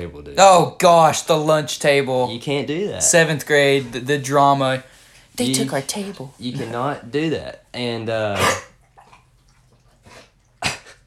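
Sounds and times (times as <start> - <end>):
speech: 0.0 - 8.7
dog coughing and hacking: 8.3 - 9.4, 10.0 - 11.0.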